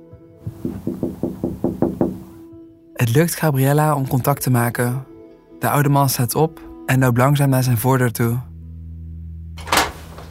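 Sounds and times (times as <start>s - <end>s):
knocking on a window: 0.4s - 2.4s
speech: 3.0s - 8.5s.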